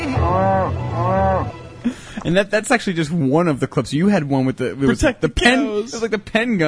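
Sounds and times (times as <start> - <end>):
cattle mooing in a news report clip: 0.0 - 1.6
speech: 2.2 - 6.6.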